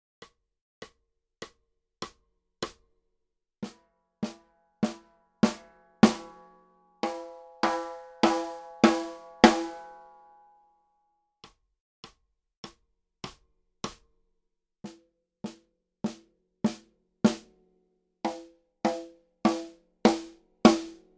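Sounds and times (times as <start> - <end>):
snare drum played with hickory sticks: 3.6 - 6.4, 7.0 - 9.9, 14.9 - 17.5, 18.3 - 21.1.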